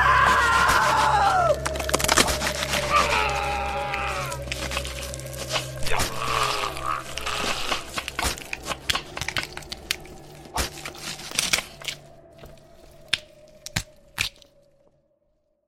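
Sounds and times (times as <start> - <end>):
bones cracking and crunching: 0.1 - 14.8.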